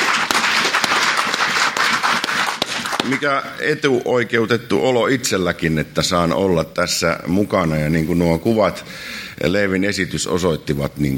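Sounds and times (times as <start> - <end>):
church congregation applauding: 0.0 - 3.6
speech: 3.1 - 11.1.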